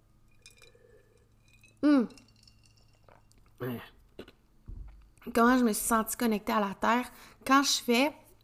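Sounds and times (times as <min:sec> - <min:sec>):
quick sip of hot coffee: 0:00.3 - 0:04.4
speech: 0:05.3 - 0:08.2.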